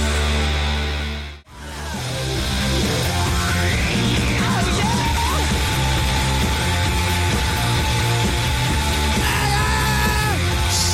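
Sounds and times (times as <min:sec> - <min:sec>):
loud rock song with distorted noisy guitars: 0:00.0 - 0:10.9
shouted vocals: 0:02.8 - 0:06.3, 0:07.5 - 0:10.9.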